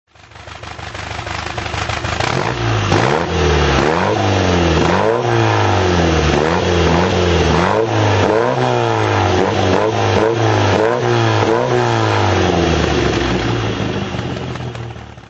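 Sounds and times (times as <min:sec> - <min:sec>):
Triumph TR4 tuned engine throttle revving: 0:00.8 - 0:15.2.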